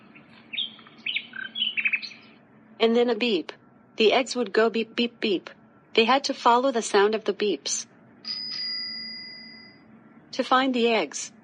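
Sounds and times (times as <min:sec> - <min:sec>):
birds chirping in a forest: 0:00.0 - 0:02.5
speech: 0:02.8 - 0:08.4, 0:10.4 - 0:11.4.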